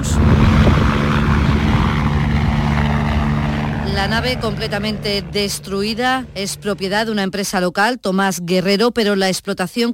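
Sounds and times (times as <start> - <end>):
helicopter engine and rotor during medical evacuation: 0.0 - 7.2
speech: 4.0 - 9.9.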